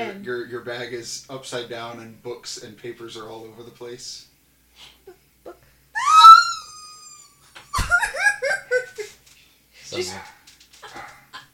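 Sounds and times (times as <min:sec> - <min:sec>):
speech: 0:00.0 - 0:05.2, 0:09.9 - 0:10.4
giggly laughter: 0:06.0 - 0:09.2
dogs barking with short high yelps: 0:10.0 - 0:11.3.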